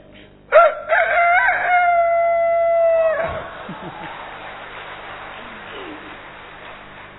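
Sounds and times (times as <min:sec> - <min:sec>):
faint noise: 0:00.0 - 0:07.1
rooster crowing: 0:00.5 - 0:04.2
laughter: 0:03.2 - 0:07.1.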